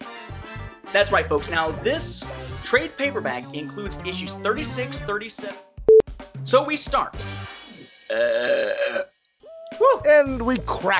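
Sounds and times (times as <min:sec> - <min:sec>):
speech: 0:00.9 - 0:05.7, 0:06.4 - 0:07.4, 0:08.2 - 0:09.0, 0:10.0 - 0:10.9
loud drawn-out burp: 0:08.1 - 0:09.1.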